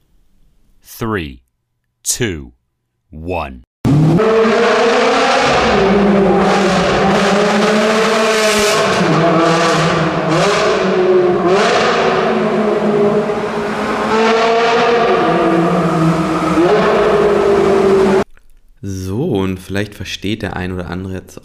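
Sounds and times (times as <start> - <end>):
speech: 1.0 - 1.4, 2.0 - 4.5, 5.6 - 7.9, 18.8 - 21.4
sports car engine revving in a tunnel: 3.9 - 18.2.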